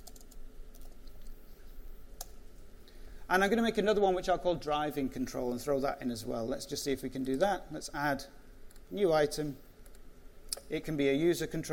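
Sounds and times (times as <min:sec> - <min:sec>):
typing on a computer keyboard: 0:00.0 - 0:01.3
speech: 0:03.3 - 0:09.6, 0:10.7 - 0:11.7.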